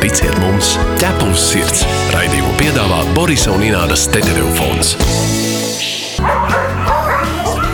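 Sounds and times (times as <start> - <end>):
speech: 0.1 - 5.9
dog barking: 6.2 - 7.7.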